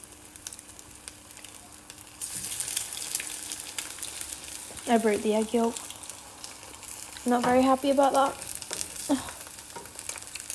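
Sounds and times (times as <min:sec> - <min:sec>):
egg with broken yolk sizzling in a frying pan: 0:00.0 - 0:10.5
speech: 0:04.9 - 0:05.9, 0:07.2 - 0:08.4, 0:09.1 - 0:09.3
person humming: 0:09.0 - 0:09.5.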